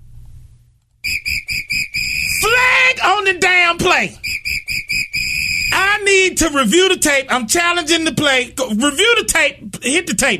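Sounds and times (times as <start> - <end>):
referee whistle blasts as in a football game: 1.0 - 2.9, 4.2 - 5.9
speech: 3.3 - 4.3, 5.7 - 10.3.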